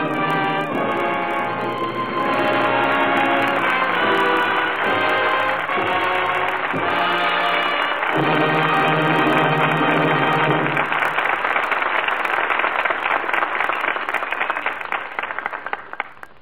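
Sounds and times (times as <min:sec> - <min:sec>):
held musical chord: 0:00.0 - 0:10.8
studio audience applause: 0:00.0 - 0:16.4.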